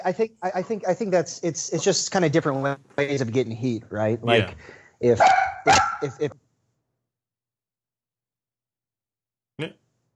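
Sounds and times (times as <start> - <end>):
speech: 0.0 - 6.4, 9.6 - 9.8
dogs barking: 5.2 - 6.2.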